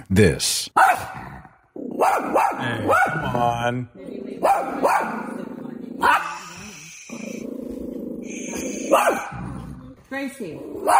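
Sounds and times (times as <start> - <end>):
speech: 0.0 - 1.2, 2.0 - 5.2, 8.4 - 9.4, 10.1 - 10.9
dog barking: 0.8 - 1.2, 1.8 - 3.5, 4.4 - 5.4, 6.0 - 6.6, 8.7 - 9.4, 10.8 - 10.9
dog growling: 1.0 - 10.9.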